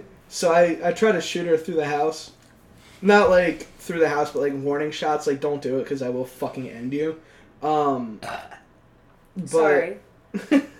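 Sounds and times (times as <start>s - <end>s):
speech: 0.3s - 2.4s, 3.0s - 8.6s, 9.4s - 10.7s
loud deep burp: 8.0s - 8.8s.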